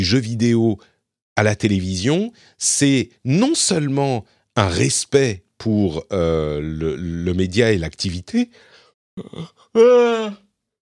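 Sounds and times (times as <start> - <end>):
speech: 0.0 - 10.4
person yawning: 9.2 - 10.5.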